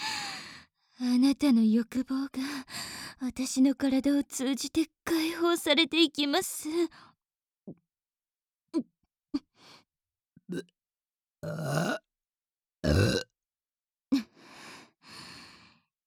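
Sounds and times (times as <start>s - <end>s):
speech: 1.0s - 7.1s, 8.7s - 8.9s, 10.5s - 10.8s, 11.4s - 12.0s, 12.8s - 13.3s
person burping: 10.5s - 10.7s, 11.4s - 12.0s, 12.8s - 13.3s.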